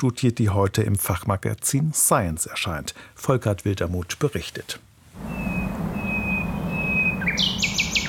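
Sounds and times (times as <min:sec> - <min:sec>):
speech: 0:00.0 - 0:05.5
steady low city rumble: 0:04.9 - 0:08.0
nightingale singing: 0:05.2 - 0:08.0.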